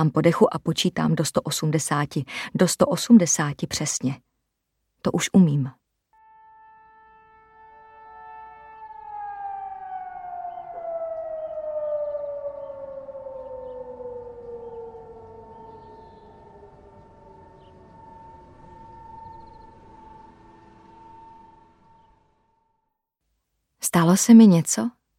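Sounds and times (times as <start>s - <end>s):
speech: 0.0s - 4.3s, 5.0s - 5.8s, 23.9s - 25.0s
distant ambulance siren: 6.2s - 23.0s.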